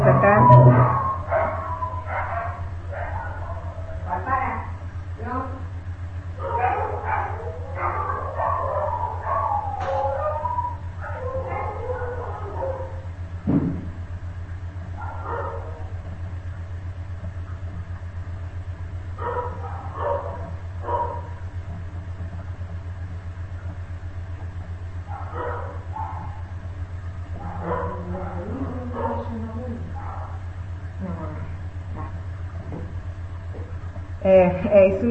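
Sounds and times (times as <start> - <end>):
dogs barking, stirred up by a cat in the street: 0.0 - 4.3, 6.3 - 13.3, 14.8 - 16.2, 19.0 - 21.6, 24.7 - 30.9
steady low idling-engine-like rumble: 0.0 - 35.0
speech: 34.6 - 35.0.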